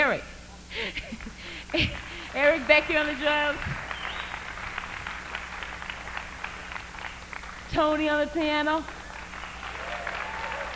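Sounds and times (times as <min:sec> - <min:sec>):
audience crowd applauding: 0:01.2 - 0:10.7
speech: 0:01.7 - 0:03.8, 0:07.7 - 0:09.0
faint cheer or whistle: 0:03.9 - 0:04.4, 0:09.4 - 0:10.7.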